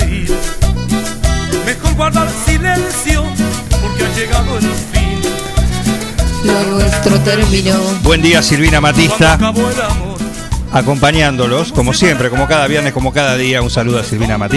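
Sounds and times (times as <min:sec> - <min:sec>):
full-band song with driving beat and strong bass: 0:01.1 - 0:10.4
male voice singing: 0:01.6 - 0:05.4, 0:06.6 - 0:10.2
speech: 0:07.2 - 0:14.5.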